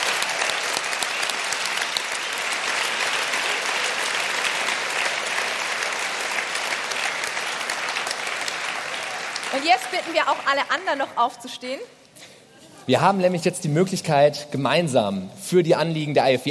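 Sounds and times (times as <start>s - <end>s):
large audience applauding: 0.0s - 11.3s
speech: 9.6s - 12.0s, 12.8s - 16.4s.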